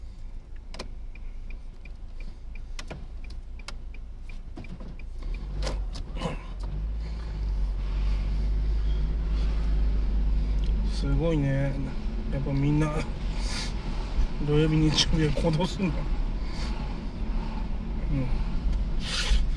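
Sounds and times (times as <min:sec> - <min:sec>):
car engines idling in a slow traffic jam: 0:00.0 - 0:19.5
clicking ticks: 0:00.5 - 0:06.7
speech: 0:11.0 - 0:13.1, 0:14.4 - 0:16.2.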